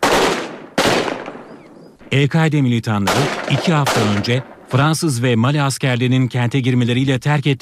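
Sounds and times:
gunfire bursts echoing between buildings in a city during an attack: 0.0s - 2.0s, 3.0s - 4.8s
speech: 2.1s - 7.5s.

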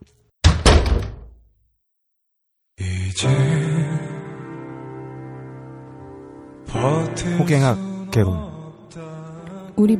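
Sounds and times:
door swinging shut with a double thump: 0.4s - 1.4s
speech: 3.2s - 3.6s, 6.8s - 9.0s, 9.8s - 9.9s.

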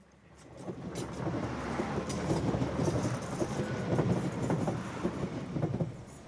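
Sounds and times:
train rumbling past on a railway line beside the sea: 0.0s - 6.2s.

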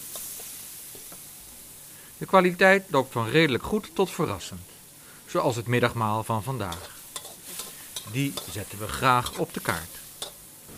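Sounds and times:
food frying in a hot wok sizzling: 0.0s - 10.7s
speech: 2.2s - 4.7s, 5.3s - 7.0s, 8.1s - 10.0s.

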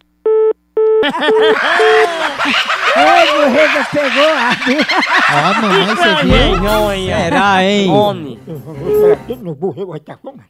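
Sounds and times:
short phone-line beeps during a call transfer: 0.3s - 2.0s
laughter: 1.0s - 9.1s
speech: 1.0s - 10.4s.

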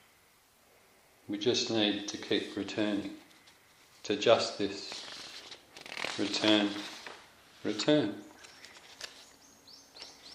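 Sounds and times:
soft outdoor hiss: 0.0s - 10.3s
speech: 1.3s - 3.2s, 4.0s - 5.0s, 6.2s - 6.9s, 7.6s - 8.3s
bird chirping: 8.2s - 10.3s.

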